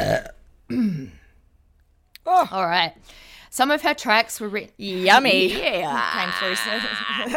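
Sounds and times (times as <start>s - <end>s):
person burping: 0.0s - 1.3s, 5.8s - 7.3s
speech: 0.2s - 1.2s, 2.2s - 7.3s.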